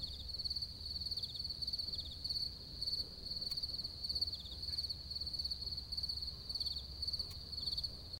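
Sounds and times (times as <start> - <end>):
crickets chirping in a high-pitched pulsed trill: 0.0 - 8.1
faint low rumble: 0.0 - 8.1.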